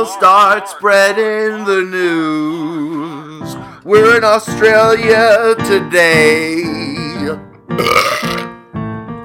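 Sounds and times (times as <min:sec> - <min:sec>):
speech: 0:00.2 - 0:08.4
loud belch: 0:07.8 - 0:08.6.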